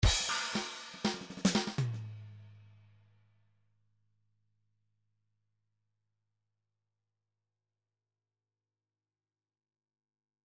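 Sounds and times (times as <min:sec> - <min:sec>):
MIDI funk drum fill: 0:00.0 - 0:02.7.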